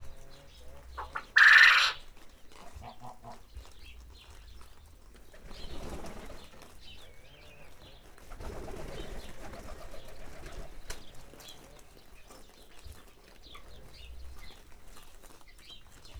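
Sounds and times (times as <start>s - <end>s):
quail in nature: 0.0s - 3.4s
pigeon in nature: 0.0s - 16.1s.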